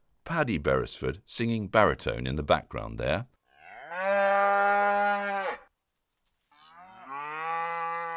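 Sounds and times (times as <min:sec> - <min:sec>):
speech: 0:00.3 - 0:03.4
cow mooing: 0:03.5 - 0:05.7, 0:06.6 - 0:08.1.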